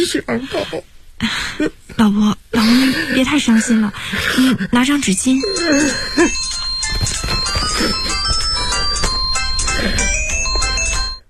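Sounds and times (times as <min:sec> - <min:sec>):
speech: 0:00.0 - 0:08.0
phone ringtone with bright melodic electronic tone pattern: 0:05.1 - 0:11.2.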